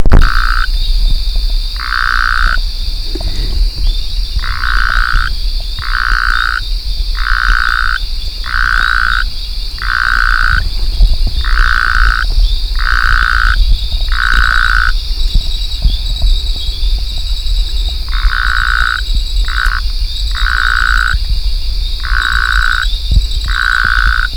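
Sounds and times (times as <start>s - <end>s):
Phyllomedusa azurea calling: 0.1s - 24.3s.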